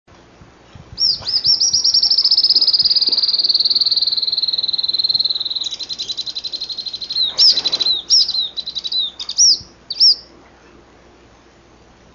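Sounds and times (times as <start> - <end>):
Grey elaenia Myiopagis caniceps buzzy trill song: 0.6 - 10.4.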